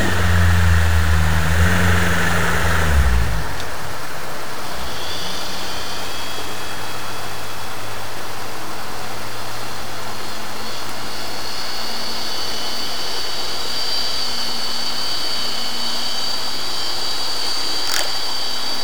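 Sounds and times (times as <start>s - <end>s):
outboard motor: 0.0s - 6.9s, 17.8s - 18.4s.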